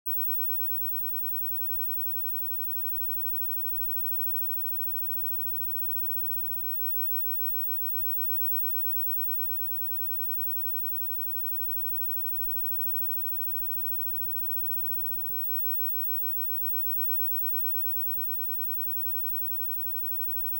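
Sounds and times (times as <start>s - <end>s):
electric garland: 0.1s - 20.5s.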